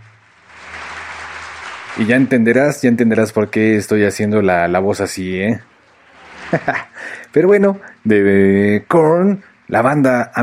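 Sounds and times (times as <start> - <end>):
applause from many hands: 0.0 - 3.3
speech: 2.0 - 5.7, 6.5 - 10.4
laughter: 6.2 - 7.2.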